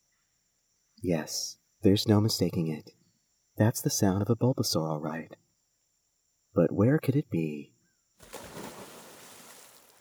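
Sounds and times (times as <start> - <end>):
speech: 1.0 - 3.0, 3.6 - 5.4, 6.6 - 8.4
water splashing in a pond: 8.2 - 10.0.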